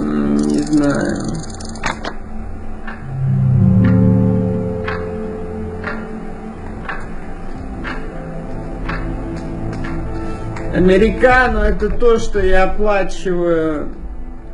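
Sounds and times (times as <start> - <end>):
clock ticking: 0.0 - 10.0
low hum: 0.0 - 14.5
speech: 0.8 - 1.5, 10.8 - 14.0.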